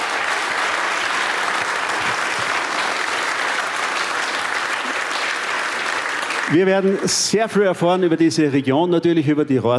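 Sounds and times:
large audience applauding for brass band: 0.0 - 7.6
speech: 6.5 - 9.7.

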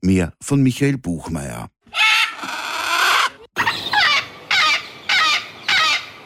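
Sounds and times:
speech: 0.0 - 1.8
parrots screeching and squawking in trees: 1.9 - 6.2.

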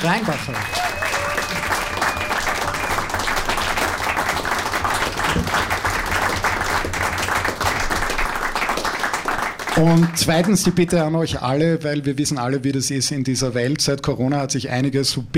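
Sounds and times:
speech: 0.0 - 0.9, 9.8 - 15.3
large audience applauding: 0.0 - 11.1.

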